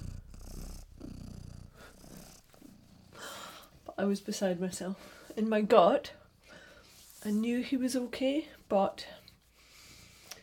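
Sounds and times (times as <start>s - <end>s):
cat purring: 0.0s - 3.9s
speech: 4.0s - 6.2s, 7.2s - 9.2s.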